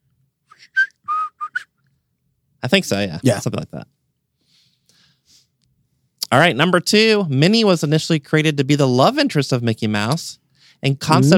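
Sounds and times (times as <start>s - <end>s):
short whistled tune: 0.5s - 1.8s
speech: 2.6s - 4.0s, 6.3s - 11.3s.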